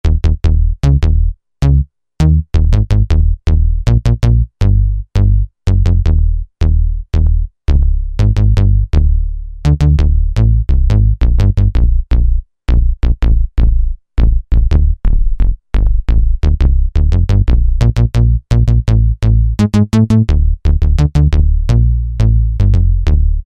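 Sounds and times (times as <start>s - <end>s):
synthesizer bass preset: 0.0s - 23.4s.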